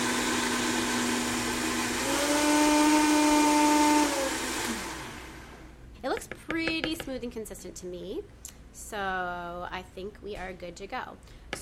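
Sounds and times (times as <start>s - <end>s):
blender motor whirring while mixing chocolatey ingredients: 0.0s - 5.7s
speech: 7.2s - 11.6s.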